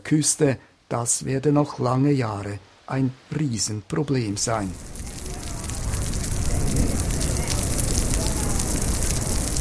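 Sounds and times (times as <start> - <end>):
speech: 0.1 - 5.0
heavy tropical downpour pounding surfaces: 4.3 - 9.5.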